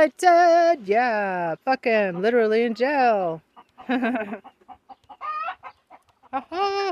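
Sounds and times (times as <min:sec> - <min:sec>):
speech: 0:00.0 - 0:04.6, 0:06.3 - 0:06.8
chicken clucking: 0:01.9 - 0:06.8.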